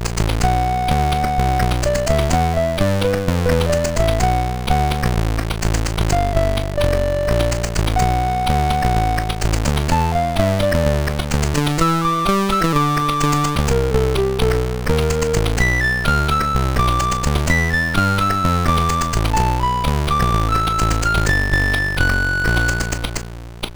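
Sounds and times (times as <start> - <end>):
MOS6581R3 SID chip synthesizer: 0.2 - 23.6.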